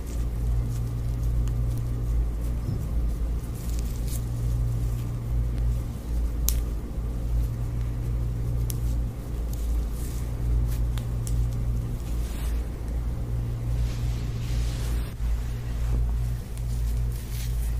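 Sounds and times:
soft hair rustling and handling: 0:00.0 - 0:17.7
steady low droning hum: 0:00.0 - 0:17.7.

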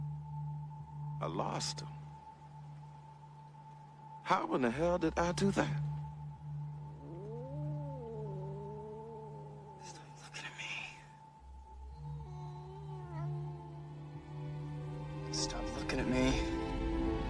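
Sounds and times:
low droning hum: 0:00.0 - 0:17.2
speech: 0:01.2 - 0:02.0, 0:04.3 - 0:05.9
cat yowling: 0:07.0 - 0:10.9, 0:12.0 - 0:14.0.

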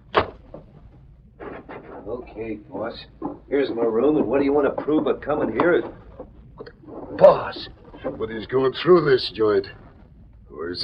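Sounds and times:
closet door rustling scrape as it settles: 0:01.4 - 0:08.6
speech: 0:02.0 - 0:06.0, 0:07.1 - 0:09.8.

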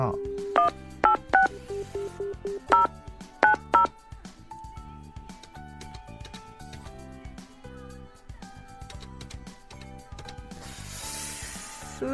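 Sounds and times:
speech: 0:00.0 - 0:00.9
mobile phone keypad dual-tone beeps: 0:00.1 - 0:03.9.

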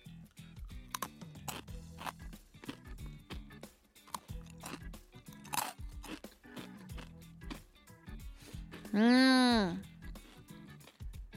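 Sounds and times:
crunching and chewing a thin crispy salad-flavoured snack: 0:00.3 - 0:07.7, 0:10.1 - 0:11.2
speech: 0:09.0 - 0:09.8.

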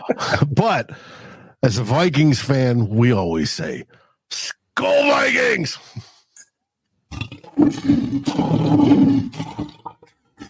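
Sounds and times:
speech: 0:00.1 - 0:06.1, 0:07.2 - 0:09.8
lion roar swelling into a deep rumbling growl: 0:07.1 - 0:10.0.

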